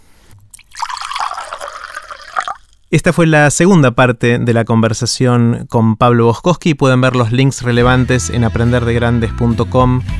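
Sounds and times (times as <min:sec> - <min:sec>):
water pouring into a glass: 0:00.6 - 0:02.9
speech: 0:02.9 - 0:10.1.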